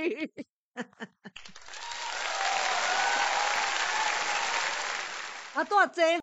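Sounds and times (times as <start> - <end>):
speech: 0.0 - 0.9, 5.6 - 6.2
audience applause: 1.4 - 5.8.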